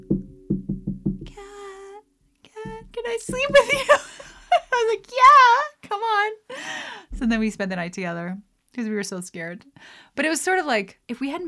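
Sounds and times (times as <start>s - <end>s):
knocking on a door, reenacted: 0.0s - 1.4s, 2.6s - 4.0s
speech: 3.1s - 4.1s, 4.8s - 11.4s.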